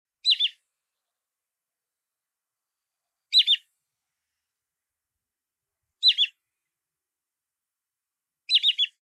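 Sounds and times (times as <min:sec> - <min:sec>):
wood sandpiper calling a quick high whistled phrase: 0:00.2 - 0:00.6, 0:06.0 - 0:06.4, 0:08.5 - 0:09.0.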